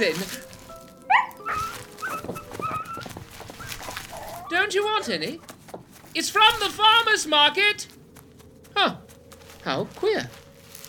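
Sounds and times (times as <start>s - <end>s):
speech: 0.0s - 0.5s, 4.7s - 5.5s, 6.1s - 7.9s, 8.8s - 9.0s, 9.6s - 10.4s
wolves or dogs whimpering: 1.0s - 5.4s
canine yelp: 1.1s - 5.1s.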